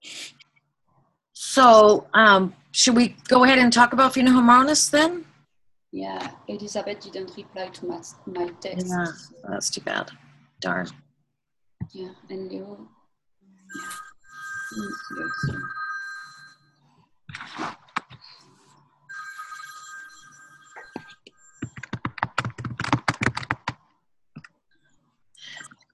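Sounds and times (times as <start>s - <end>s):
speech: 1.6s - 5.3s, 5.9s - 11.0s, 11.9s - 13.0s, 14.7s - 15.8s
man's phone ringing in electronic bursts: 13.7s - 16.7s, 19.1s - 22.1s.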